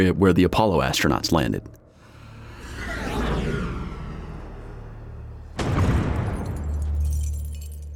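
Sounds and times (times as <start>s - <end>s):
speech: 0.0s - 1.8s
deep rumbling roar: 2.0s - 6.1s
rising rushing whoosh of comet: 2.0s - 6.2s
comet crashing into the moon: 5.4s - 7.0s.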